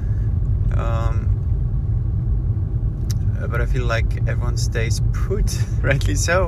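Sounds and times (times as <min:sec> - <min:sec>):
car interior road rumble while driving: 0:00.0 - 0:06.4
speech: 0:03.5 - 0:06.4.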